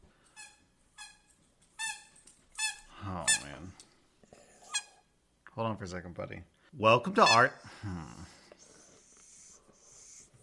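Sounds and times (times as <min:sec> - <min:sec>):
speech: 0:05.6 - 0:08.4
dog snorting and wheezing: 0:08.0 - 0:10.4.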